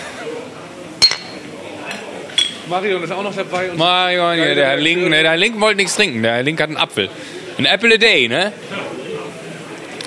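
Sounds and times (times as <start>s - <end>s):
low murmur at a harness-racing track: 0.0s - 10.0s
glasses clinking in a toast at a harness-racing track: 1.0s - 1.5s, 2.4s - 2.7s
speech: 2.7s - 8.8s.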